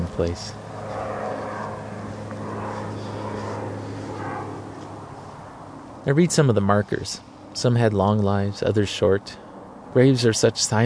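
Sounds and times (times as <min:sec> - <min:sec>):
low hum: 0:00.0 - 0:10.3
jet plane taking off from SeaTac airport above a cemetery: 0:00.0 - 0:10.8
speech: 0:00.2 - 0:00.6, 0:06.0 - 0:09.4, 0:10.0 - 0:10.8.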